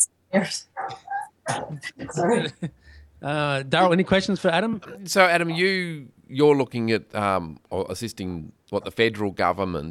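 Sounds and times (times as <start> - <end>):
speech: 0.3 - 9.8
dogs barking: 0.6 - 2.4.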